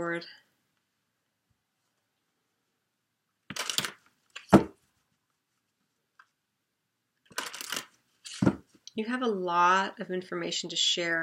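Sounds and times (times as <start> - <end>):
speech: 0.0 - 0.5, 9.0 - 11.2
card being drawn from an oracle card deck: 3.5 - 4.8, 7.3 - 8.6.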